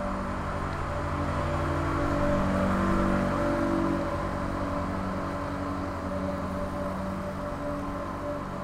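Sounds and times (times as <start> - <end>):
Zamboni ice resurfacer driving past: 0.0 - 8.6.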